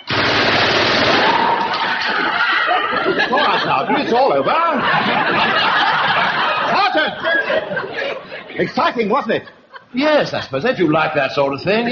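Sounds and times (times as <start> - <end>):
gun firing a burst of rapid automatic rounds: 0.0 - 1.6
laughter: 1.6 - 11.8
speech: 3.7 - 6.0, 8.6 - 11.8.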